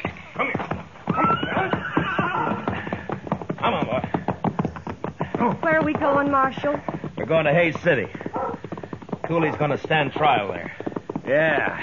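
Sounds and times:
horse hoof clip-clops: 0.0 - 11.8
shuffling: 0.0 - 11.8
horse whinnying: 0.4 - 3.2, 8.3 - 8.6
speech: 5.4 - 8.2, 9.3 - 11.8.

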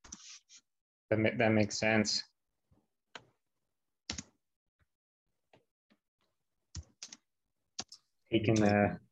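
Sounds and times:
speech: 1.1 - 2.3, 8.3 - 9.0
keyboard typing: 4.1 - 4.4, 6.7 - 7.2, 7.8 - 8.8.

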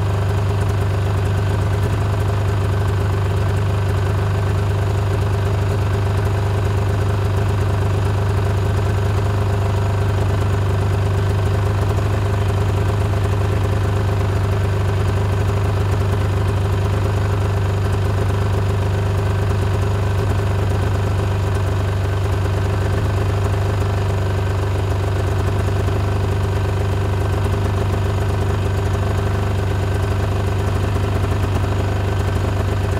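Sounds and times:
snowmobile engine idling: 0.0 - 32.9.

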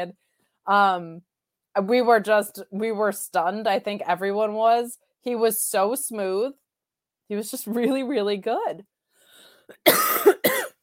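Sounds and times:
speech: 0.0 - 6.6, 7.3 - 8.9
person coughing: 9.7 - 10.8.

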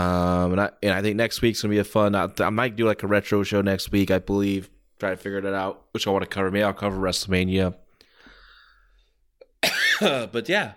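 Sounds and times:
speech: 0.0 - 7.8, 10.0 - 10.7
person coughing from a tickle in the throat: 9.6 - 10.4.

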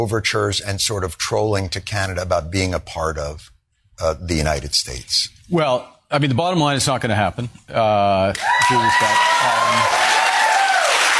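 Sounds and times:
speech: 0.0 - 10.2
scattered cheers: 8.3 - 11.1
audience applause: 8.4 - 11.1.

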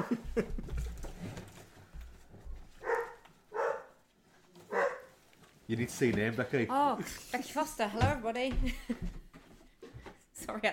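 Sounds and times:
speech: 0.4 - 0.6, 5.7 - 9.2, 10.5 - 10.7
dog barking: 2.8 - 4.0, 4.7 - 5.2.

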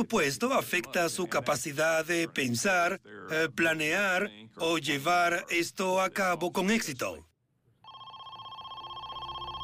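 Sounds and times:
speech: 0.0 - 7.3
telephone bell ringing: 7.8 - 9.6.

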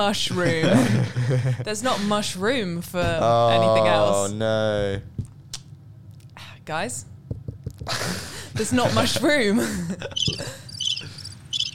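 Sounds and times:
speech: 0.0 - 5.1, 6.7 - 7.1, 7.9 - 11.1
laughter: 0.4 - 1.7, 7.9 - 10.7
cricket chirping: 10.1 - 11.7.

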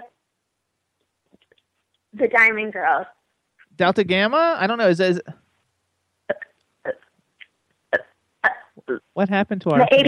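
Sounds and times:
speech: 2.2 - 3.2, 3.8 - 5.4, 8.9 - 10.0
woman burping: 6.3 - 7.0, 7.9 - 8.9.

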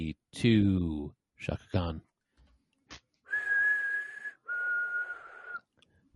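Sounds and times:
speech: 0.4 - 2.1
person whistling two long steady notes: 3.3 - 5.7.

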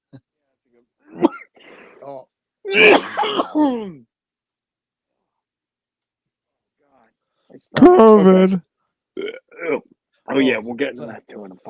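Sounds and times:
harsh cough with hacking: 1.1 - 1.6, 2.7 - 4.0
speech: 2.0 - 4.1, 7.5 - 11.6.

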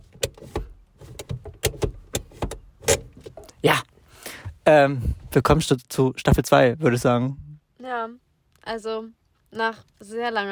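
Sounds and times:
car handbrake being pulled up inside the vehicle: 0.0 - 3.6
speech: 3.6 - 3.9, 4.7 - 7.4, 8.0 - 10.5.

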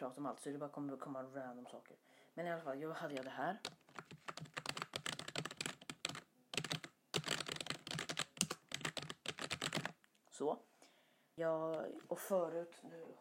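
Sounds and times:
speech: 0.0 - 4.6, 10.4 - 10.7, 11.4 - 13.1
typing on a computer keyboard: 3.1 - 10.0.

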